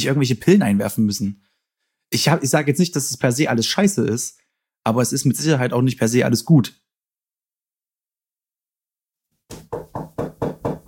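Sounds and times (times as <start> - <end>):
speech: 0.0 - 1.4, 2.1 - 6.8
loud sharp knocks on a hard surface: 9.5 - 10.8.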